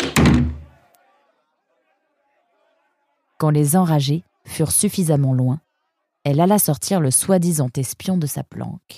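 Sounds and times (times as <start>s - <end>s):
door swinging shut with a solid thud: 0.0s - 0.8s
speech: 3.4s - 5.6s, 6.2s - 8.9s.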